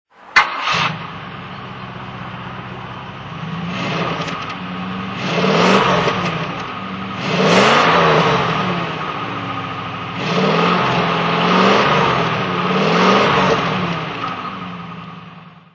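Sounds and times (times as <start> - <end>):
Rover P5B engine throttle: 0.2 - 15.7.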